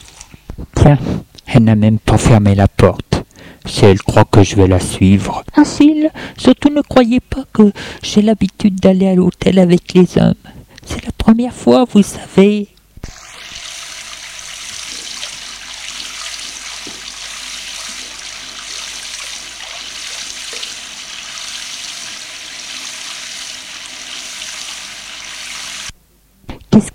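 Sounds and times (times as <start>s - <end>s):
speech: 0.6s - 13.2s, 26.8s - 26.9s
running water in a hotel room: 13.0s - 26.0s.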